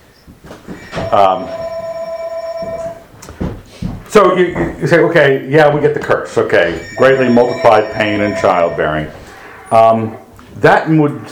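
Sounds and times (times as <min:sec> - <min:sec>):
telephone ringing: 0:00.7 - 0:03.2, 0:06.4 - 0:09.5
speech: 0:01.1 - 0:01.6, 0:04.1 - 0:11.3.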